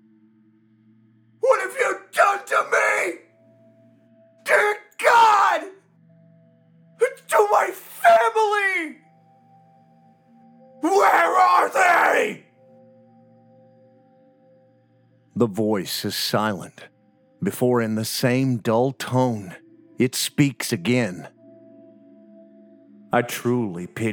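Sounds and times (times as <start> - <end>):
man screaming and groaning in rage: 1.4 - 3.2, 4.5 - 5.8, 7.0 - 9.0, 10.8 - 12.4
speech: 15.4 - 21.4, 23.1 - 24.1.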